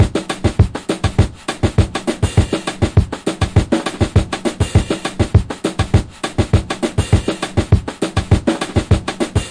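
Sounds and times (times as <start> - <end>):
Brazilian brush beat drum loop: 0.0 - 9.4.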